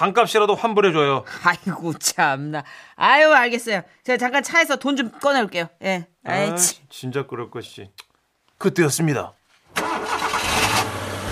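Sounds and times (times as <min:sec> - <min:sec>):
speech: 0:00.0 - 0:08.0, 0:08.6 - 0:09.9
truck engine starting: 0:09.7 - 0:11.2.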